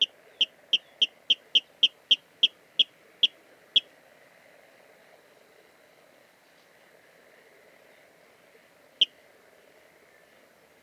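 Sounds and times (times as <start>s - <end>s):
water rail calling kip notes at Dviete: 0.0s - 3.4s.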